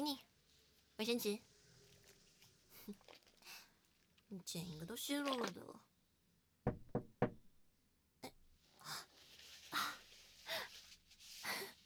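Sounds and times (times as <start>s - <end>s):
speech: 0.1s - 0.3s, 1.0s - 1.5s, 2.9s - 3.2s, 4.3s - 5.9s
sharp knocks on a door: 6.6s - 7.4s.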